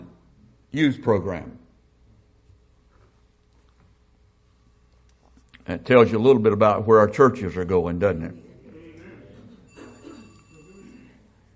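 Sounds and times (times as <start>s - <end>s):
speech: 0.7s - 1.6s, 5.7s - 8.4s
telephone ringing with faint electronic tone: 9.7s - 11.2s.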